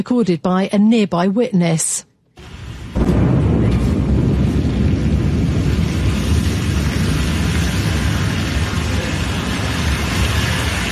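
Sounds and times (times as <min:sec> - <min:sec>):
speech: 0:00.0 - 0:03.3
rocket explosion on a launch pad with heavy roaring rumble: 0:02.7 - 0:10.8.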